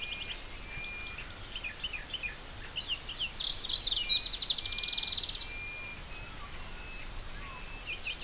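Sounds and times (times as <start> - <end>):
faint splendid fairywren chirps: 0.0 - 8.2.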